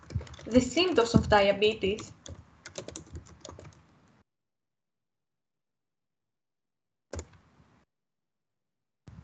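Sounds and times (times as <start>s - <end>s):
typing on a computer keyboard: 0.0s - 3.9s
speech: 0.5s - 2.2s.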